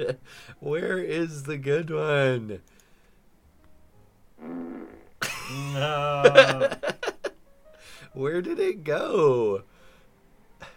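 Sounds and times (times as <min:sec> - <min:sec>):
speech: 0:00.0 - 0:02.8, 0:04.4 - 0:07.0, 0:08.2 - 0:09.7
buzzy fart sound effect: 0:04.4 - 0:05.2
laughter: 0:05.2 - 0:07.3.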